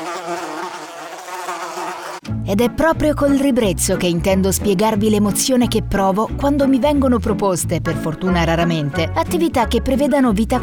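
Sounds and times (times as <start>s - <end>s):
fly buzzing: 0.0s - 2.3s
speech: 2.5s - 10.6s.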